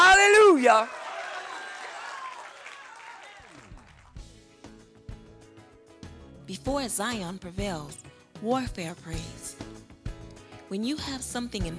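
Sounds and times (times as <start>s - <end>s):
speech: 0.6s - 1.0s, 6.5s - 9.8s, 10.7s - 11.7s
audience applause: 0.6s - 4.2s.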